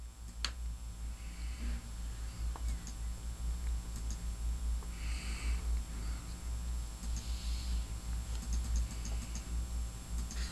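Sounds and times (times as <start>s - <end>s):
steady low hum: 0.0s - 10.4s
computer keys typing: 2.5s - 3.0s, 3.9s - 4.2s, 7.0s - 7.3s, 8.4s - 9.5s, 10.2s - 10.4s.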